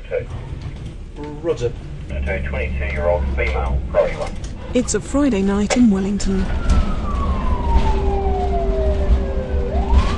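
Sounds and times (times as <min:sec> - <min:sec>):
engine hum: 0:00.0 - 0:10.1
low rumble of surrounding traffic: 0:00.0 - 0:10.1
speech: 0:01.4 - 0:06.8
ambulance siren wailing: 0:05.9 - 0:10.1.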